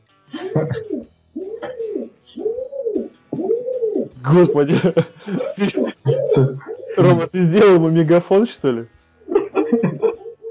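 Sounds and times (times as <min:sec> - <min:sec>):
laughter: 0:00.4 - 0:00.9, 0:04.3 - 0:07.5, 0:09.3 - 0:10.4
pigeon cooing: 0:00.4 - 0:07.3, 0:09.3 - 0:10.4
speech: 0:00.6 - 0:01.1, 0:04.3 - 0:09.0, 0:09.7 - 0:09.9.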